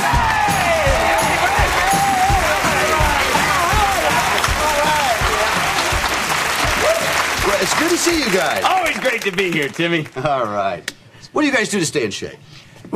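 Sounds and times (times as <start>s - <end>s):
studio audience cheering and whooping: 0.0s - 9.4s
large studio audience applauding: 0.0s - 10.8s
speech: 7.9s - 12.9s.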